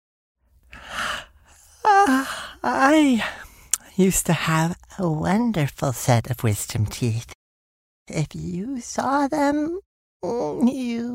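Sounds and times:
person yawning: 0:00.8 - 0:02.6
speech: 0:02.6 - 0:03.4, 0:04.0 - 0:07.4, 0:08.1 - 0:11.1.

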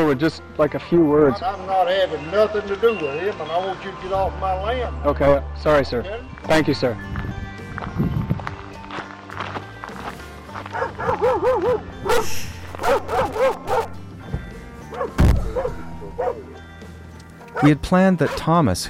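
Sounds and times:
speech: 0:00.1 - 0:07.2, 0:11.0 - 0:14.0, 0:17.6 - 0:18.8
scuffing movement noises: 0:07.2 - 0:11.8
dog barking and yapping: 0:10.7 - 0:14.0, 0:14.9 - 0:16.4, 0:17.5 - 0:18.5.

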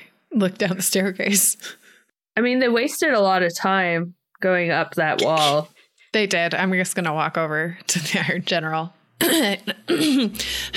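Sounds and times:
speech: 0:00.4 - 0:01.8, 0:02.4 - 0:10.7
person doing an exaggerated sing-song throat clearing: 0:09.2 - 0:10.7.

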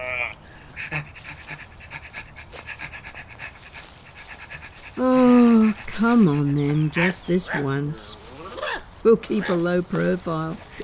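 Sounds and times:
dog panting: 0:00.6 - 0:08.5, 0:09.1 - 0:10.8
speech: 0:00.9 - 0:01.6, 0:06.0 - 0:08.2, 0:09.0 - 0:10.8.

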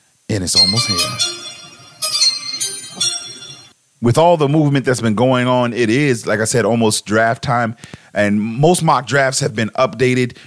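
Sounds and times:
speech: 0:00.3 - 0:01.6, 0:04.0 - 0:10.4
bright little chime strikes: 0:00.6 - 0:03.8.

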